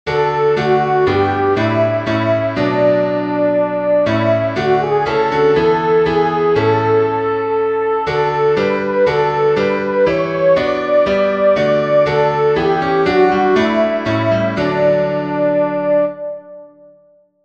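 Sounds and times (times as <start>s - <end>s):
soprano singing in Swabia: 0.1s - 16.3s.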